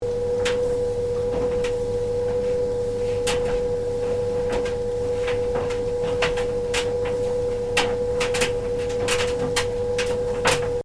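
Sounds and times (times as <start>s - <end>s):
domestic tumble dryer running: 0.0s - 10.8s.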